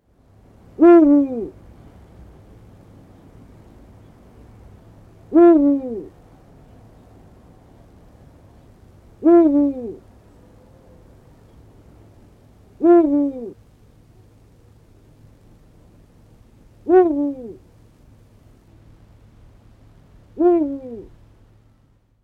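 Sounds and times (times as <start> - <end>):
Eurasian eagle-owl courtship call: 0.8 - 1.6, 5.3 - 6.2, 9.2 - 10.1, 12.8 - 13.6, 16.8 - 17.6, 20.4 - 21.1.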